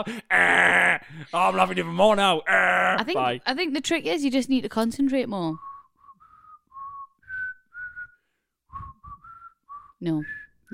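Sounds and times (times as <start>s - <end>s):
speech: 0.0s - 5.7s, 10.0s - 10.7s
person whistling a halting unpracticed tune: 5.6s - 10.7s.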